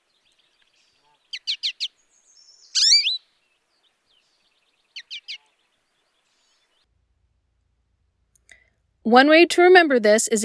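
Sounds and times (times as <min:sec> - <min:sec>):
American Goldfinch chip series call: 0:00.0 - 0:06.8
American Goldfinch rising wheezy call: 0:00.7 - 0:03.3, 0:04.2 - 0:05.6
speech: 0:09.1 - 0:10.4.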